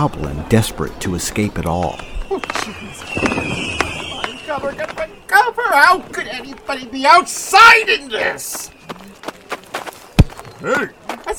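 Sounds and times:
speech: 0.0 - 3.7, 4.6 - 8.8, 10.6 - 11.3
noisy crowd: 0.0 - 11.3
voices chattering: 0.0 - 11.3
sparkling firework crackles: 1.8 - 7.9
fireworks exploding overhead: 1.9 - 7.0.

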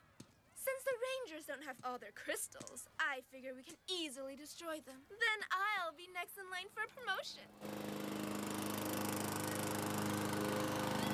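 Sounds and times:
speech: 0.6 - 8.1
lawn mower engine mowing grass: 7.5 - 11.1.

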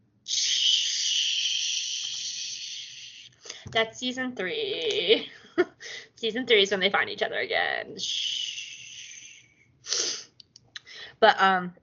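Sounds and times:
long wheezy hissing breath: 0.3 - 3.7, 8.6 - 11.1
speech: 3.7 - 8.3, 11.2 - 11.8.

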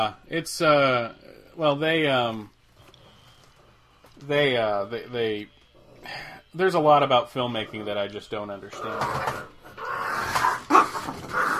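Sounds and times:
speech: 0.0 - 2.5, 4.2 - 9.5
dogs whimpering with high whining: 8.7 - 11.5
dogs barking: 9.1 - 11.5
dog yelping: 9.8 - 11.5.

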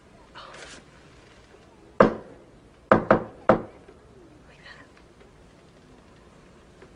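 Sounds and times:
knocks on wood in a secret code pattern: 2.0 - 2.3, 2.9 - 3.7.

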